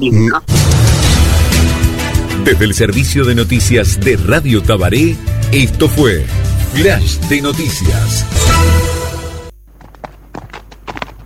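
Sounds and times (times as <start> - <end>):
speech: 0.0 - 0.7, 2.4 - 8.7
loud burst of sound: 0.5 - 2.2
horse hooves trotting at a steady pace: 9.6 - 11.2.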